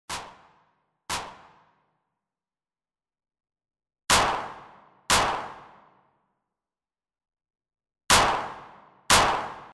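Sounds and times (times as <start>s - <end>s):
whip crack: 0.1s - 1.6s, 4.1s - 5.8s, 8.1s - 9.7s.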